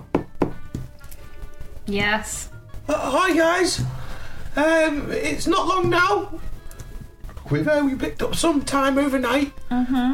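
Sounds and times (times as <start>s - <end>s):
firm knocks on a door: 0.0s - 0.9s
speech: 1.9s - 4.0s, 4.6s - 6.5s, 7.5s - 10.1s.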